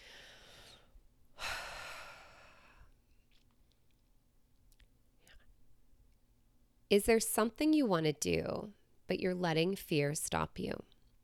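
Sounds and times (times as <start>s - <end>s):
deep human breath: 0.0s - 3.0s
speech: 6.9s - 10.9s.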